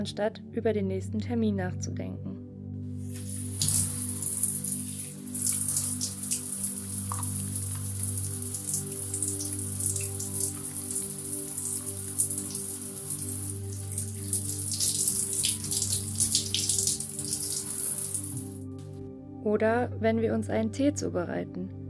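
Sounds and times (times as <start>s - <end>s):
speech: 0.0s - 2.3s, 19.6s - 21.8s
shower spray pattering on a hard surface: 3.0s - 18.7s.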